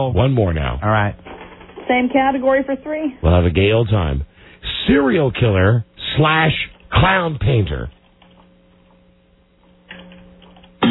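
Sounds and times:
speech: 0:00.0 - 0:01.3, 0:01.9 - 0:08.0
typing on a computer keyboard: 0:09.9 - 0:10.8.

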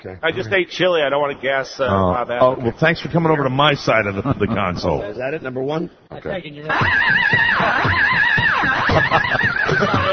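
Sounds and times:
speech: 0:00.0 - 0:10.1
laughter: 0:04.1 - 0:05.0, 0:06.7 - 0:10.1
horse neighing with a quavering whinny: 0:06.7 - 0:10.1.

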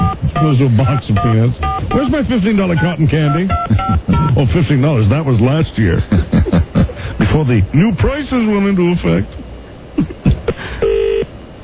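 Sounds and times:
telephone dialing a number: 0:00.0 - 0:02.1, 0:02.8 - 0:04.3
telephone ringing tone: 0:00.0 - 0:02.1, 0:10.8 - 0:11.3
speech: 0:00.4 - 0:06.6, 0:07.4 - 0:09.4
laughter: 0:03.4 - 0:04.6, 0:05.9 - 0:07.4, 0:10.0 - 0:10.7.

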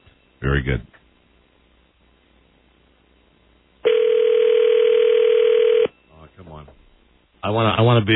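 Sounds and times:
speech: 0:00.4 - 0:01.0, 0:07.5 - 0:08.1
telephone dial tone: 0:03.8 - 0:05.9.

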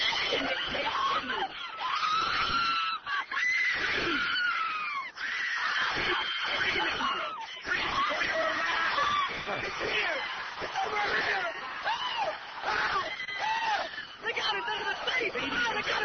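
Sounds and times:
laughter: 0:00.0 - 0:03.6, 0:04.9 - 0:16.0
crowd of many people screaming: 0:00.0 - 0:16.0
speech: 0:00.3 - 0:01.6.

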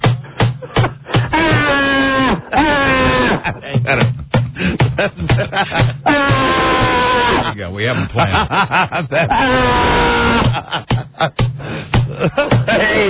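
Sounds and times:
laughter: 0:00.2 - 0:13.0
person wailing in agony: 0:01.1 - 0:04.0, 0:06.0 - 0:08.2, 0:09.2 - 0:10.8
speech: 0:03.4 - 0:04.1, 0:05.0 - 0:06.0, 0:07.9 - 0:11.5, 0:12.2 - 0:13.0.

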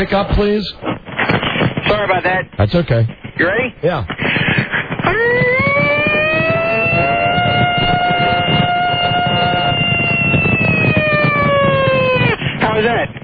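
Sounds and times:
speech: 0:00.0 - 0:04.4, 0:05.1 - 0:05.3
human voice imitating a siren: 0:05.0 - 0:12.4.

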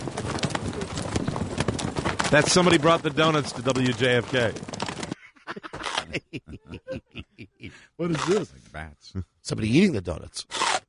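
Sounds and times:
horse hooves clip-clopping on a hard surface: 0:00.0 - 0:05.2
speech: 0:02.3 - 0:04.7, 0:08.0 - 0:10.6
laughter: 0:05.2 - 0:08.0.

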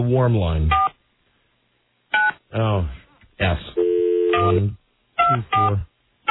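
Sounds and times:
speech: 0:00.0 - 0:00.8, 0:02.5 - 0:06.2
telephone dialing tones: 0:03.8 - 0:05.7.

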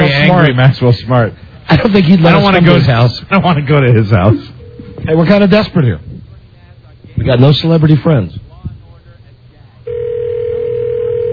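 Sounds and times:
low room noise: 0:00.0 - 0:11.3
speech: 0:00.3 - 0:06.1, 0:07.2 - 0:08.4
hotel room telephone dial tone: 0:09.9 - 0:11.3.

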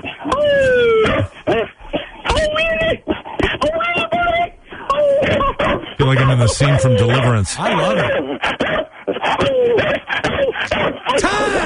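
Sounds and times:
dog high-pitched squeals and whimpers: 0:00.0 - 0:11.6
dog barking: 0:05.2 - 0:11.6
speech: 0:06.5 - 0:11.6.

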